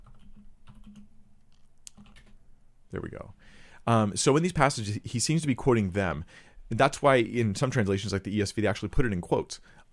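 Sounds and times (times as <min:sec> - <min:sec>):
faint typing on a computer keyboard: 0:00.0 - 0:01.1, 0:01.9 - 0:02.4
speech: 0:02.9 - 0:09.9.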